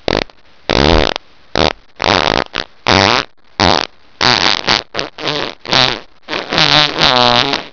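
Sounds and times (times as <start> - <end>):
farts: 0.0 - 7.7.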